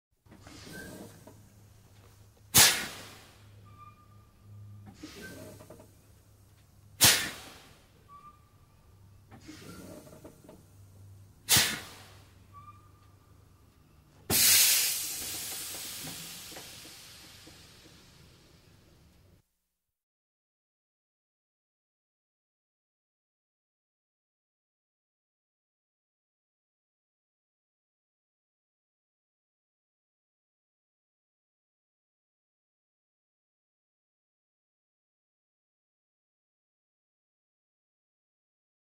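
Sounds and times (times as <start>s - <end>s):
multiple truck air brakes: 0.3s - 1.7s, 2.5s - 6.1s, 7.0s - 13.4s, 14.3s - 18.8s.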